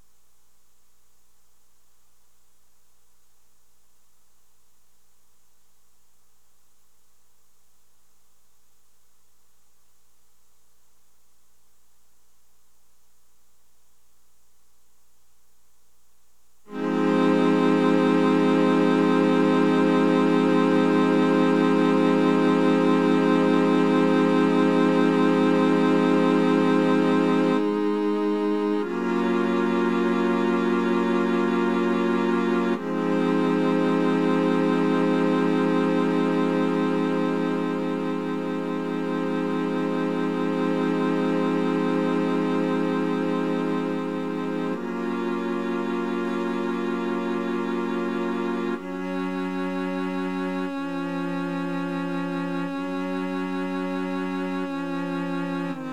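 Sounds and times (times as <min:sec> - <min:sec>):
cello: 0:16.8 - 0:39.2, 0:39.8 - 0:55.9.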